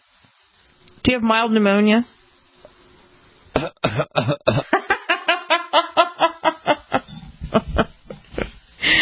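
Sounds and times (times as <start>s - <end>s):
speech: 1.0s - 2.2s, 3.6s - 4.7s
fit of rapid harsh coughing: 3.6s - 4.8s
laughter: 4.7s - 8.6s.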